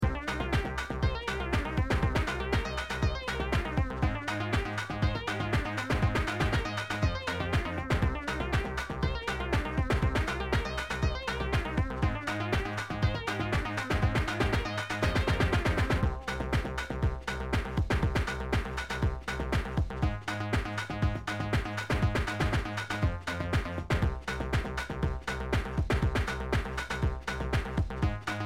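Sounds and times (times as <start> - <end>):
lead synth sound: 0.0 - 18.9
bass tone: 0.0 - 28.4
beat: 0.0 - 28.4.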